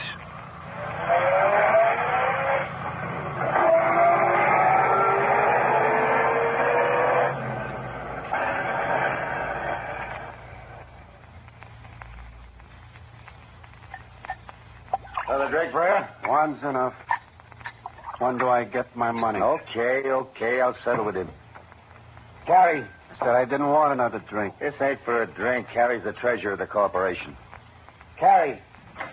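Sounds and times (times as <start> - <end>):
car tires squealing pulling away: 0.0 - 11.0
car engine roar: 0.0 - 13.9
quieter traffic rumble: 0.0 - 29.1
speech: 18.3 - 21.4, 22.7 - 27.4, 28.2 - 28.7.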